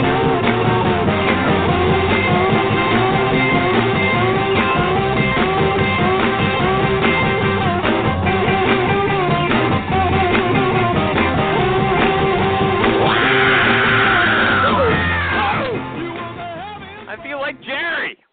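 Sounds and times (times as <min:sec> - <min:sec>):
dense busy music bed: 0:00.0 - 0:18.2
whooping yells: 0:12.9 - 0:15.8
man shouting: 0:13.0 - 0:15.8, 0:17.1 - 0:18.2.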